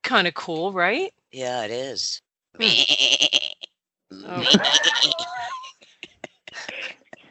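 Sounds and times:
speech: 0:00.1 - 0:05.6
person imitating a whiny goat bleat: 0:02.6 - 0:05.7
laughter: 0:04.3 - 0:07.2.

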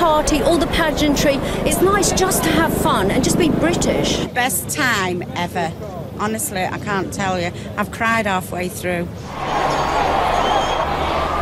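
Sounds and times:
speech: 0:00.2 - 0:09.7
crowd shouting: 0:09.3 - 0:11.4.

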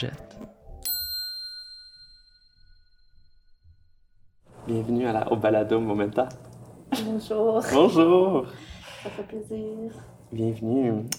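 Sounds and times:
speech: 0:00.0 - 0:00.4, 0:04.7 - 0:11.1
small bell struck: 0:00.8 - 0:03.8.

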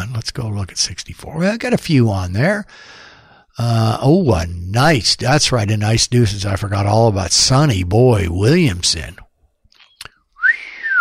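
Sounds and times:
speech: 0:00.2 - 0:09.2
person whistling: 0:09.9 - 0:10.9.

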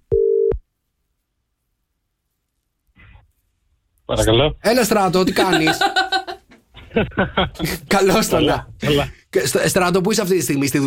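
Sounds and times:
steady telephone ringback tone while placing a call: 0:00.1 - 0:00.5
speech: 0:04.1 - 0:06.0, 0:06.9 - 0:10.8
laughter: 0:05.1 - 0:09.1.

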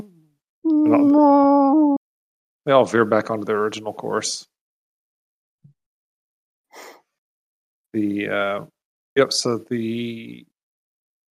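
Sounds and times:
voice imitating a space whale call with a long moaning tone: 0:00.7 - 0:02.0
speech: 0:00.8 - 0:02.0, 0:02.6 - 0:04.5, 0:07.9 - 0:10.5.

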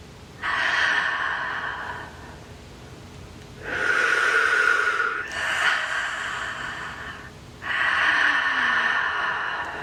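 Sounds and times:
deep breaths in and out during a guided meditation: 0:00.4 - 0:02.6, 0:03.6 - 0:09.8.

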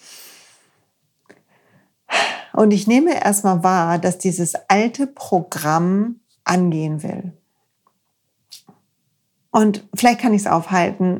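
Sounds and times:
deep breath out: 0:01.5 - 0:02.6
speech: 0:02.6 - 0:07.4, 0:09.5 - 0:11.1.

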